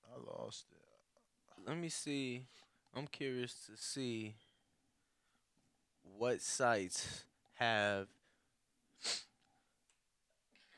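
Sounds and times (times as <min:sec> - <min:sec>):
speech: 0:00.2 - 0:00.9, 0:01.5 - 0:04.4, 0:06.0 - 0:08.2, 0:09.0 - 0:09.3
person sneezing: 0:09.0 - 0:09.4.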